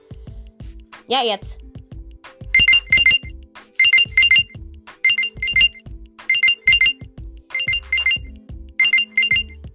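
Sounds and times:
speech: 1.1 - 1.6
electronic watch-locator alarm beeping: 2.5 - 9.6.

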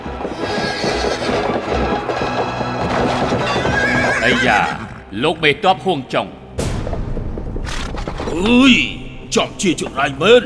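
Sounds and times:
hoofbeats: 0.0 - 5.2, 7.2 - 10.4
horse whinnying as it falls during a mounted fight: 0.2 - 5.1
speech: 4.3 - 6.4, 8.4 - 10.4.

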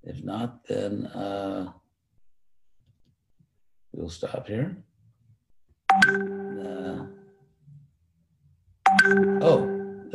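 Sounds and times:
speech: 0.0 - 1.8, 4.0 - 4.9, 6.0 - 7.2, 9.1 - 10.1
bell chime: 5.9 - 7.2, 8.9 - 10.1.

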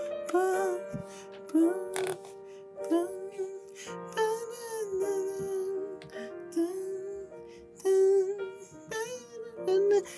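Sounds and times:
slow tender wedding love song with sung melody and chiming accompaniment: 0.0 - 10.1
speech: 1.1 - 1.8.

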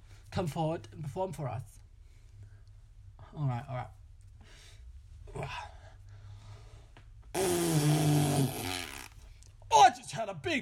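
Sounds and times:
speech: 0.3 - 1.8, 3.3 - 4.0, 5.4 - 5.7, 10.2 - 10.6
breathy puff: 7.3 - 9.2
fart noise made by a person with the mouth: 7.3 - 9.3.

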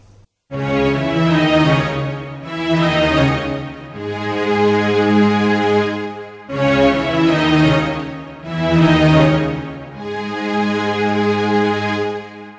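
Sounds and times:
recorded reflective moody deep string part: 0.6 - 12.5.

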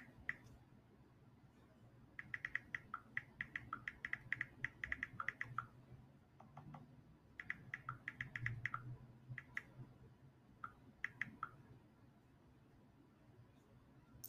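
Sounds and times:
low hum: 0.0 - 14.2
typing on a computer keyboard: 2.2 - 5.7, 7.4 - 9.7, 10.6 - 11.6.

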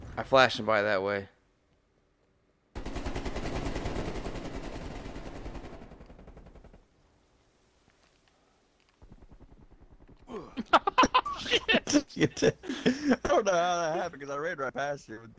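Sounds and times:
speech: 0.2 - 1.3, 12.3 - 12.6, 13.5 - 15.3
rapid automatic gunfire in a shooter video game: 2.8 - 5.9
laughter: 10.3 - 15.1.

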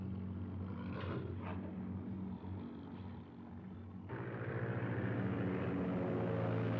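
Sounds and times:
biplane propeller engine droning in a film scene: 0.0 - 6.7.

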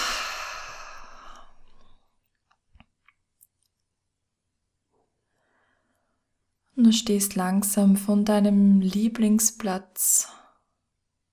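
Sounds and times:
deep breath out through the mouth during a guided relaxation exercise: 0.0 - 1.6
speech: 6.8 - 10.4.

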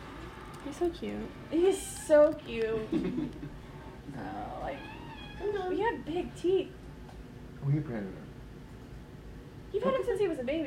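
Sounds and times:
speech: 0.6 - 6.8, 7.6 - 8.3, 9.7 - 10.6
cat giving a drawn-out rising meow: 4.5 - 5.7.

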